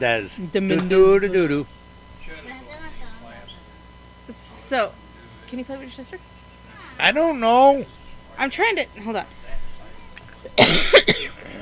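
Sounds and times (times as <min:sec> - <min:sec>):
speech: 0:00.0 - 0:01.8, 0:04.3 - 0:06.4, 0:07.0 - 0:09.4, 0:10.5 - 0:11.2
sharp cough: 0:10.6 - 0:11.6.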